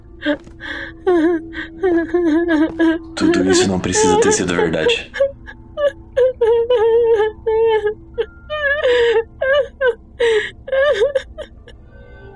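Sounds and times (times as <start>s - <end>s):
woman crying and whimpering: 0.1s - 11.8s
speech: 0.2s - 5.3s.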